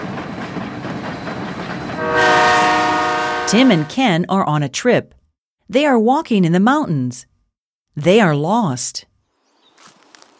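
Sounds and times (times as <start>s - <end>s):
train travelling to Spain rumbling along the tracks: 0.0s - 4.2s
sustained train horn blaring: 2.0s - 4.0s
speech: 3.5s - 7.3s, 8.0s - 9.1s.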